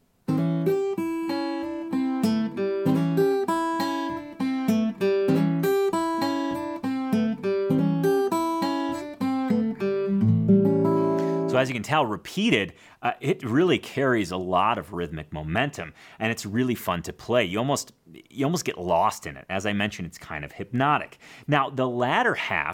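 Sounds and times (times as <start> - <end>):
single-note blues guitar line implying an A7 chord: 0.3 - 11.8
speech: 11.6 - 22.7.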